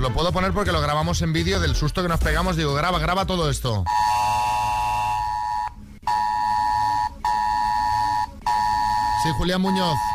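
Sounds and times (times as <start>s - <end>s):
speech: 0.0s - 4.4s, 9.2s - 10.1s
mobile phone alert alarm in a radio newsroom: 3.9s - 10.1s.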